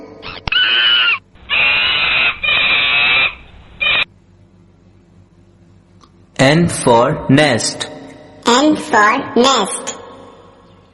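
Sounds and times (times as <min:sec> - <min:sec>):
monkey screeching: 0:00.2 - 0:04.1
speech: 0:06.4 - 0:07.9, 0:08.6 - 0:10.0.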